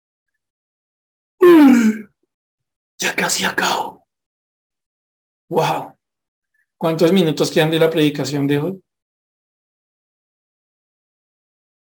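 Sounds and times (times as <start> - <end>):
preacher imitating a yawn during a sermon: 1.4 - 2.1
speech: 3.0 - 4.0, 5.5 - 5.9, 6.8 - 8.8.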